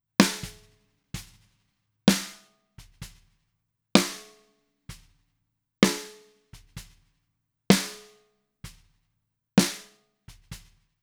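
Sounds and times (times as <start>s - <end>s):
snare drum: 0.2s - 3.3s, 4.0s - 5.2s, 5.8s - 7.1s, 7.7s - 8.9s, 9.6s - 10.8s.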